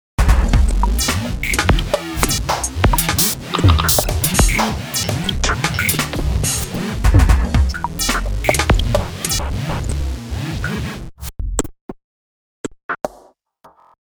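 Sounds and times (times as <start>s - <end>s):
polyphonic oscillator synthesized drums: 0.2s - 11.1s.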